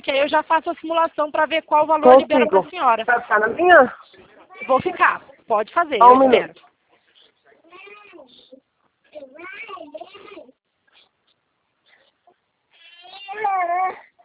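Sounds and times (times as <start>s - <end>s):
speech: 0.1s - 4.0s, 4.6s - 6.6s
young child crying: 12.8s - 14.2s.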